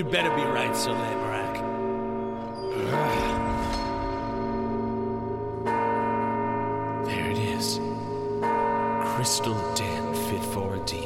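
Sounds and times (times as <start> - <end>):
speech: 0.0 - 1.6, 2.8 - 3.5, 9.2 - 11.0
large bell tolling: 0.0 - 11.0.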